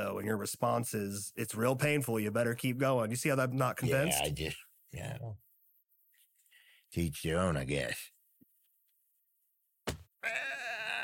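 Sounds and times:
speech: 0.0s - 5.4s, 6.9s - 8.1s
voice imitating a bleating baby goat: 3.8s - 4.4s, 10.2s - 11.0s.

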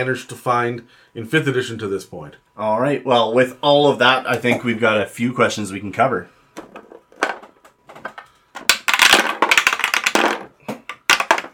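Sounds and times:
speech: 0.0s - 6.7s
dice rolling through a dice tower: 6.8s - 11.5s.

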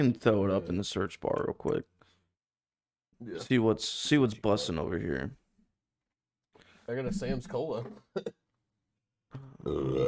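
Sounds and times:
speech: 0.0s - 2.0s, 3.2s - 5.4s, 6.9s - 8.4s, 9.3s - 10.0s
loud drawn-out burp: 9.3s - 10.0s.

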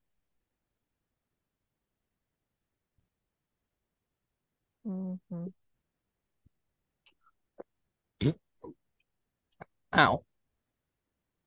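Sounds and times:
speech: 4.9s - 5.7s, 9.9s - 10.3s
throaty burps: 8.2s - 8.8s.

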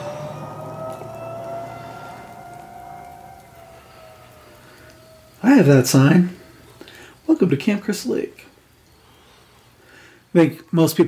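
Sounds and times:
1970s police car siren wailing: 0.0s - 6.6s
low rumble: 0.0s - 6.8s
speech: 5.4s - 6.4s, 7.4s - 8.5s, 10.3s - 11.0s.

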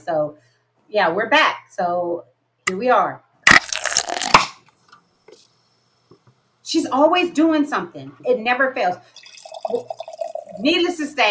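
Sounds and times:
speech: 0.0s - 3.2s, 6.7s - 11.2s
beer pouring into a glass: 9.2s - 10.7s.

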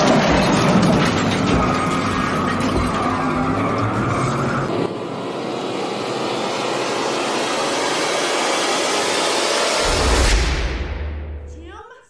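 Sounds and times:
car tires skidding: 0.0s - 10.3s
car engine roaring: 0.0s - 11.5s.

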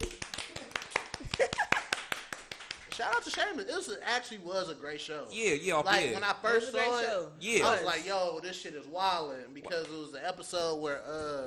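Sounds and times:
sharp hand claps: 0.0s - 3.6s
speech: 3.0s - 11.4s.

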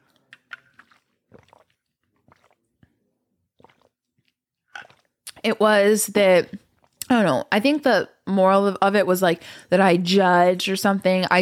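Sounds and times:
person sipping water: 0.0s - 5.5s, 6.5s - 7.1s
swallowing noises: 0.0s - 5.6s
speech: 5.4s - 11.3s.

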